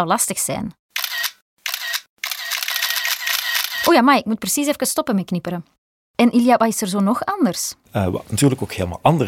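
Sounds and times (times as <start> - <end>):
speech: 0.0 - 0.8, 3.9 - 9.2
camera shutter clicks: 1.0 - 3.9.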